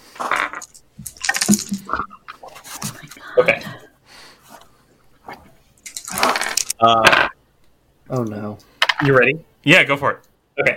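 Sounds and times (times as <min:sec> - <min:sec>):
D8 and percentile dice rolling on a table: 0:00.2 - 0:02.0, 0:05.9 - 0:07.4
speech: 0:06.8 - 0:07.1, 0:08.2 - 0:10.7.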